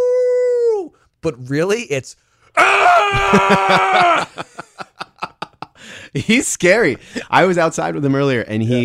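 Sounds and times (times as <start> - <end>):
person imitating a hound dog's howl: 0.0 - 0.9, 2.6 - 4.3
speech: 1.2 - 4.7, 6.1 - 8.8
laughter: 3.0 - 6.4.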